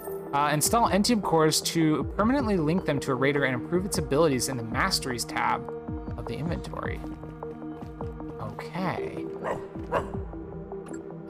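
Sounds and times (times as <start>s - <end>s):
speech: 0.3s - 7.3s, 8.5s - 10.4s
dog barking: 9.4s - 10.2s.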